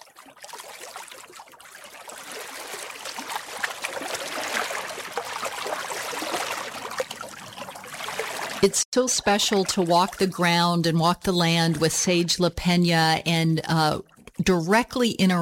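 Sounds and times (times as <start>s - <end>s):
creek water trickling over rocks: 0.0s - 10.8s
speech: 8.6s - 15.4s.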